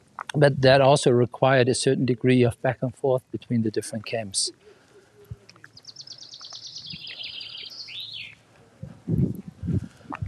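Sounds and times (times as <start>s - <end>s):
speech: 0.4s - 4.6s
birds singing outdoors at a former concentration camp memorial: 4.5s - 8.5s.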